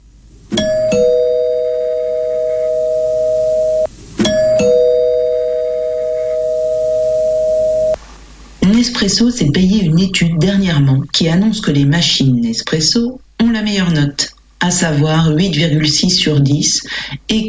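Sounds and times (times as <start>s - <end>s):
electronic doorbell chiming: 0.6s - 8.0s
speech: 9.0s - 17.4s.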